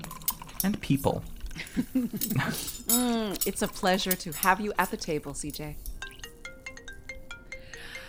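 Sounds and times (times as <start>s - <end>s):
speech: 0.6s - 6.0s
phone ringtone with bright electronic notes: 6.0s - 8.0s.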